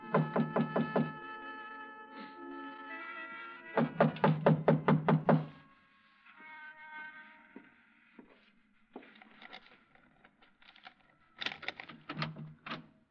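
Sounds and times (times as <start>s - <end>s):
knocking on a locked front door: 0.1s - 1.2s, 3.8s - 5.6s.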